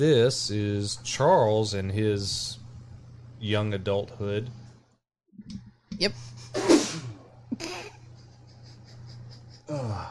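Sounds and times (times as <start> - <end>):
speech: 0.0 - 2.6, 3.4 - 4.6, 5.4 - 6.6, 9.7 - 10.0
sharp sneeze: 6.6 - 7.2
laughter: 7.6 - 10.0.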